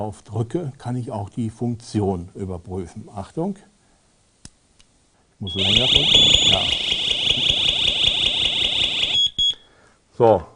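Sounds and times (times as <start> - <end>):
speech: 0.0 - 3.7, 5.4 - 7.0, 10.2 - 10.5
smoke detector alarm shrieking during test: 5.4 - 9.7.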